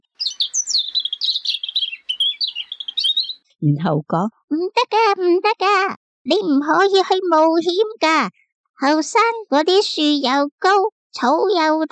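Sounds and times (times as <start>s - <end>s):
myna bird calling in a tree: 0.0s - 3.5s
speech: 3.6s - 11.9s.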